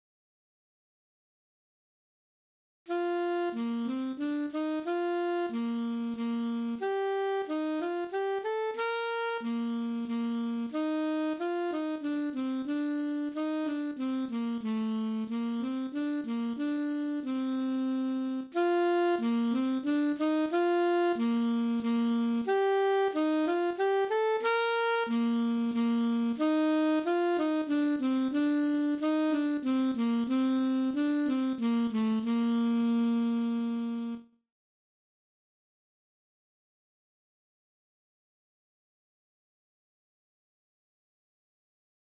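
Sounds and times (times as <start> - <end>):
alto saxophone playing a minuet: 2.9 - 34.4.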